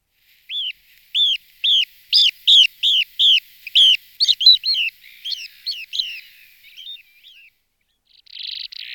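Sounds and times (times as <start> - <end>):
Jespacek ploskozoby Limicola falcinellus calling: 0.5 - 7.5.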